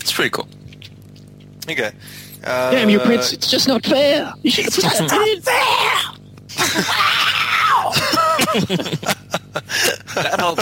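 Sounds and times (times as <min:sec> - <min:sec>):
speech: 0:00.1 - 0:00.6, 0:01.6 - 0:06.1, 0:06.8 - 0:07.3, 0:08.5 - 0:10.5
people imitating a singer's raspy scream: 0:05.4 - 0:08.4
laughter: 0:06.5 - 0:07.2, 0:07.8 - 0:10.5.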